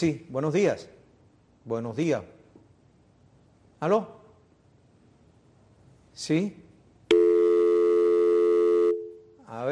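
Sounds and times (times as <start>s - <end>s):
speech: 0.0s - 1.0s, 1.6s - 2.4s, 3.8s - 4.2s, 6.2s - 6.6s
telephone busy tone after a dropped call: 7.1s - 9.3s.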